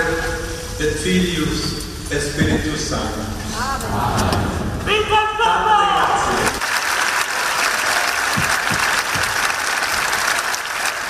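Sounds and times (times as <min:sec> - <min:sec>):
speech: 0:00.8 - 0:06.5
large crowd applauding the pope: 0:06.2 - 0:11.0.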